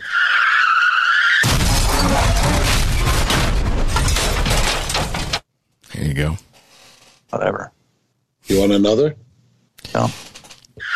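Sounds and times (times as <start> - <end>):
high tire screech: 0.0 - 3.1, 10.8 - 10.9
car crash with crunching metal: 0.0 - 5.5
scattering debris: 1.4 - 5.5
speech: 6.2 - 6.5, 7.3 - 7.8, 8.5 - 9.2, 10.0 - 10.3.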